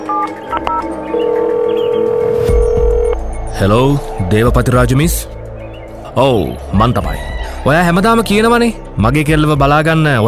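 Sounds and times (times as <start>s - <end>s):
telephone touch-tone dialing beeps: 0.0s - 3.2s
speech: 0.2s - 1.4s, 3.6s - 5.4s, 6.2s - 10.2s.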